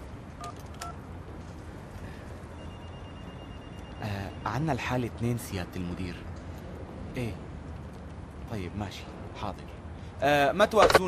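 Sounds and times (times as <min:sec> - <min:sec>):
telephone keypad tones from dialing a phone call: 0:02.6 - 0:04.4
speech: 0:04.0 - 0:06.3, 0:07.2 - 0:07.4, 0:08.5 - 0:11.0.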